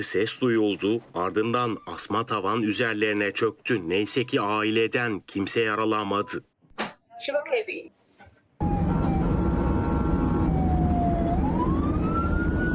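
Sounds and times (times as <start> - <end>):
speech: 0.0 - 6.5, 7.2 - 8.0
ambulance siren wailing on a highway: 8.6 - 12.7.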